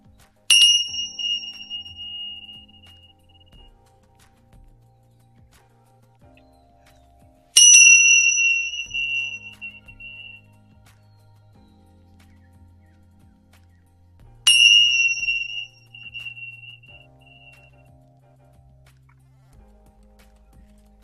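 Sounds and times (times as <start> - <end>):
Tibetan bell ringing: 0.5 - 3.3, 7.6 - 10.4, 14.5 - 17.6.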